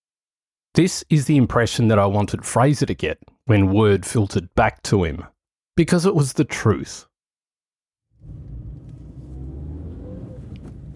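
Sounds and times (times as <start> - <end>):
speech: 0.8 - 7.1
car engine and road rumble on a city street: 8.2 - 10.9.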